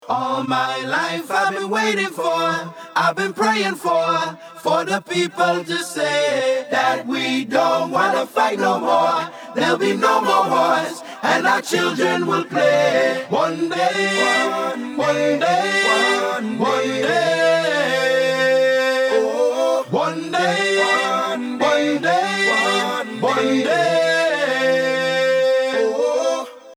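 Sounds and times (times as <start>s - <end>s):
background vocals: 0.0s - 26.7s.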